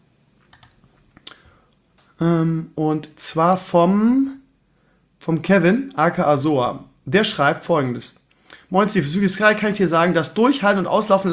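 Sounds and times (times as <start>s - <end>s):
computer keyboard typing while an email is opened: 0.5s - 0.9s
speech: 2.2s - 4.4s, 5.2s - 11.3s.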